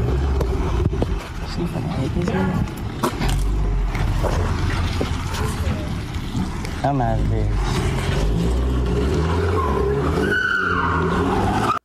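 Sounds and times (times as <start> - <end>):
car engine roaring: 0.0 - 11.8
speech: 1.6 - 2.8, 6.8 - 9.1
car tires squealing through a long skid: 7.6 - 11.8.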